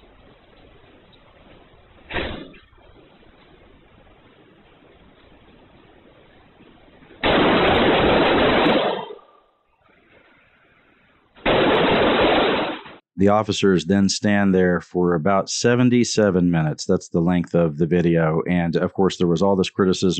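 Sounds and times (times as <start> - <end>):
bursts of rapid gunfire in a school hallway: 7.2 - 9.2, 11.4 - 13.0
speech: 13.2 - 20.1.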